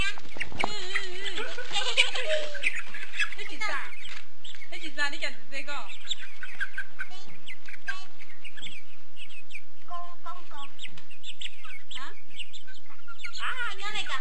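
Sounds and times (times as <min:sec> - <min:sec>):
flock of chickens clucking and chirping: 0:00.0 - 0:14.1
laughter: 0:00.6 - 0:03.7
speech: 0:05.1 - 0:06.2.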